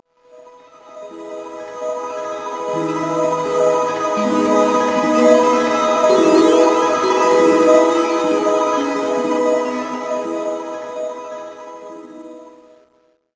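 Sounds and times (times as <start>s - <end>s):
melodies: 1.1s - 12.7s.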